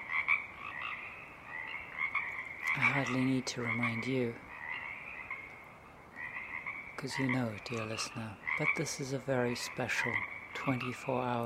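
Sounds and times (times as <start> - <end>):
dense marsh frog chorus croaking in a marsh before dawn: 0.0 - 11.4
speech: 2.8 - 4.5, 7.0 - 11.4.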